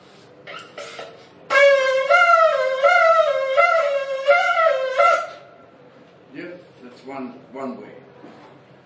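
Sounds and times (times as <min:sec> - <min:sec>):
teruah broken blast sounded on a ram's horn shofar: 0:01.5 - 0:05.6.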